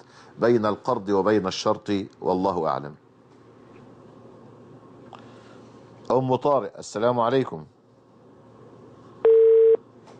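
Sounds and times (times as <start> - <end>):
speech: 0.4 - 3.0, 6.1 - 7.7
steady mid-pitched telephone beep of line disconnecting: 9.2 - 9.8.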